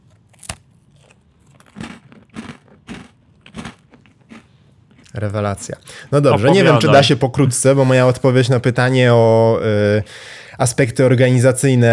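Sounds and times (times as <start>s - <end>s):
crisp cookie being bitten and chewed into a microphone: 0.0s - 5.2s
speech: 5.1s - 11.9s.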